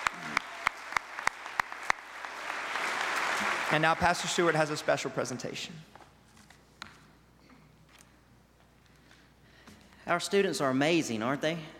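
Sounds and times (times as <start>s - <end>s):
audience applauding for graduates: 0.0s - 5.4s
speech: 3.7s - 5.9s, 10.1s - 11.7s.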